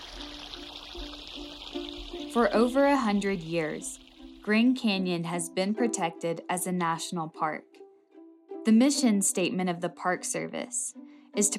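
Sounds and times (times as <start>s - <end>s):
river water flowing: 0.0s - 4.8s
speech: 2.3s - 7.7s, 8.6s - 11.5s.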